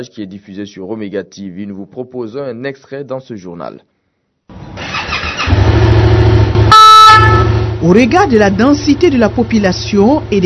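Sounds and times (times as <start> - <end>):
speech: 0.0 - 3.9, 7.8 - 10.4
red BNSP rescue motorcycle engine revving in dense traffic: 4.5 - 10.4
loud sustained horn blaring: 6.5 - 7.8.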